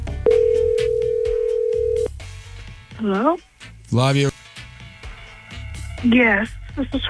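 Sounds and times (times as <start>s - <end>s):
phone ringback tone on outgoing call: 0.3s - 2.1s
speech: 3.0s - 4.4s, 6.0s - 7.0s.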